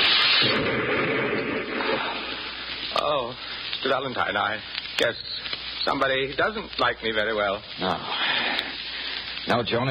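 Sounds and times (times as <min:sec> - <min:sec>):
hand grenade explosion: 0:00.0 - 0:02.8
speech: 0:03.0 - 0:08.4, 0:09.4 - 0:09.8.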